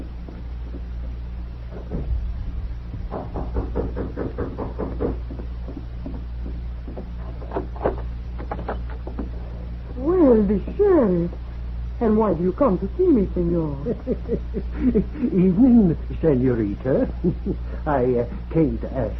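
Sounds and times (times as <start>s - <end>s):
steady low hum: 0.0s - 19.1s
quick knocks on a door: 1.7s - 2.3s, 2.9s - 9.3s
speech: 10.4s - 11.4s, 12.0s - 19.1s
laughter: 13.6s - 16.1s, 17.0s - 17.9s.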